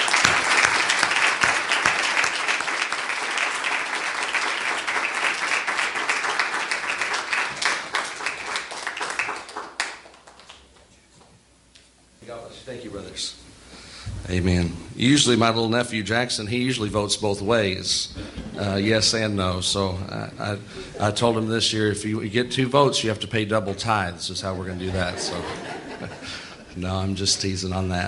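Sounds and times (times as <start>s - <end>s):
church audience applauding: 0.0s - 11.0s
speech: 12.9s - 13.4s, 14.3s - 25.7s, 26.8s - 28.0s
laughter: 20.4s - 21.6s, 23.5s - 26.9s.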